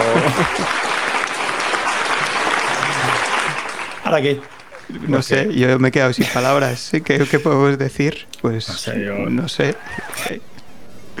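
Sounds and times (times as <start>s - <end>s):
crowd applause: 0.0s - 6.6s, 9.6s - 10.4s
laughter: 0.0s - 11.1s
speech: 4.1s - 10.5s.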